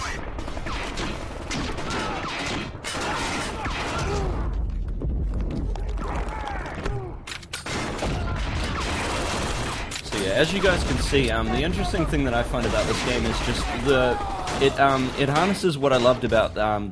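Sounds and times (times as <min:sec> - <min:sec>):
video game grenade launcher fire and explosions: 0:00.0 - 0:16.9
speech: 0:10.4 - 0:16.9.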